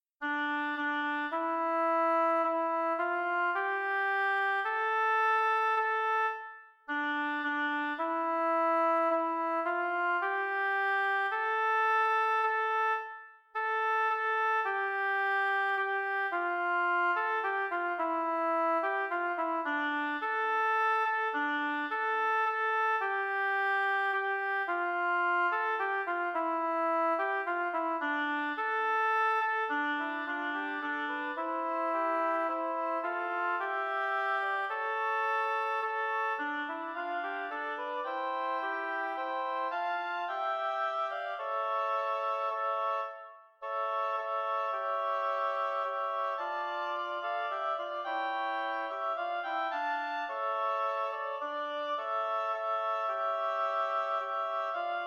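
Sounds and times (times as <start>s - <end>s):
oboe trio playing a chaconne: 0.2s - 55.0s.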